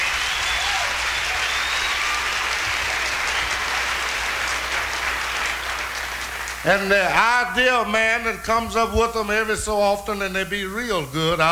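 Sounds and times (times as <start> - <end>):
audience applause: 0.0 - 7.5
speech: 6.6 - 11.4.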